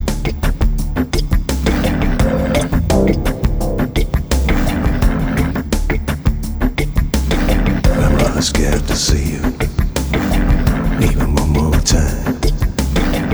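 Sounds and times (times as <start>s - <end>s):
Hammond organ: 0.0s - 13.3s.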